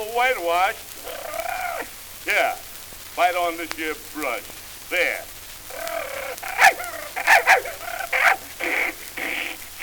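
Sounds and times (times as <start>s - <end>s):
speech: 0.2s - 0.9s, 2.2s - 5.9s
dog barking: 5.9s - 8.8s.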